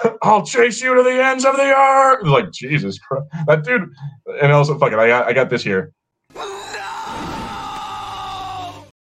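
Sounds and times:
speech: 0.2s - 6.5s
man screaming: 6.3s - 8.9s.

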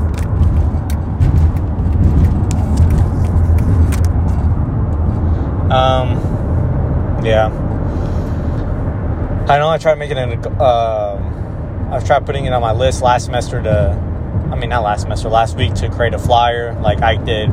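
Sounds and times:
car driving along Highway 35 in traffic: 0.0s - 17.5s
speech: 7.3s - 7.6s, 9.5s - 17.5s.

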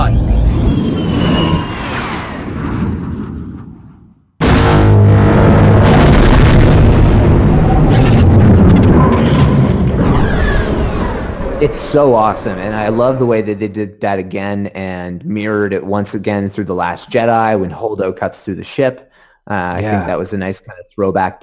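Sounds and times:
low rumbling: 0.0s - 14.4s
seismic charge explosion boom with deep twangy ringing in an asteroid field: 2.2s - 13.7s
speech: 11.6s - 21.4s.

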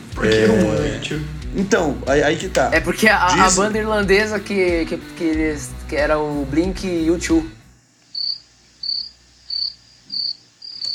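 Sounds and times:
speech: 0.2s - 7.6s
cricket chirping, awkward-silence effect: 8.1s - 10.9s.

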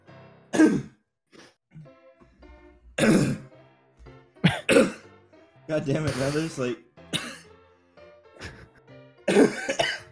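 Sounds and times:
person coughing in a harsh fit: 0.6s - 0.9s, 3.0s - 3.4s, 4.4s - 5.0s, 6.1s - 6.5s, 7.2s - 7.5s, 9.3s - 10.0s
speech: 0.6s - 0.9s, 5.7s - 6.9s.

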